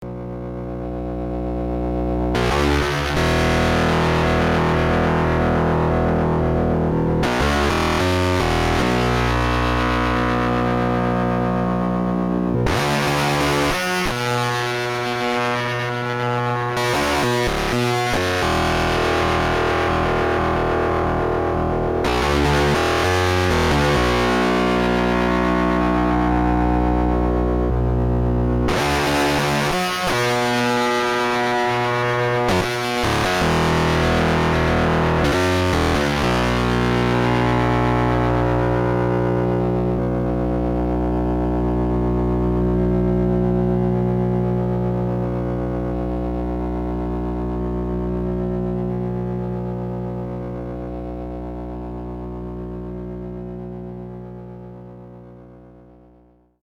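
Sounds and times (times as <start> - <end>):
fuzz guitar: 0.0 - 56.4.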